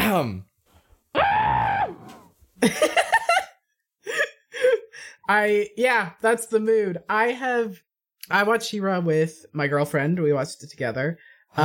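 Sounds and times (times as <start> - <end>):
speech: 0.2 - 0.5, 2.6 - 3.0, 5.3 - 11.6
people screaming excitedly: 1.2 - 2.3.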